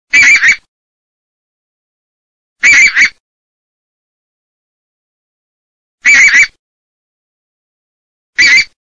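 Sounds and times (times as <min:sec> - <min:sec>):
bean goose: 0:00.1 - 0:00.7, 0:02.6 - 0:03.2, 0:06.0 - 0:06.6, 0:08.4 - 0:08.8.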